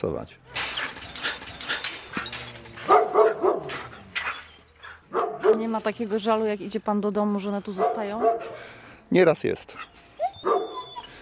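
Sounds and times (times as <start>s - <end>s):
speech: 0.0s - 0.6s, 5.6s - 10.7s
several dogs barking with yips and whines: 0.8s - 5.8s, 7.7s - 8.7s, 10.4s - 11.0s.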